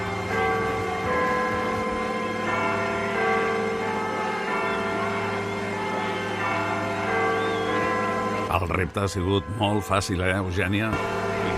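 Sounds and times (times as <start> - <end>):
church bells tolling in the background of a rock song: 0.0 - 11.5
speech: 8.7 - 11.2.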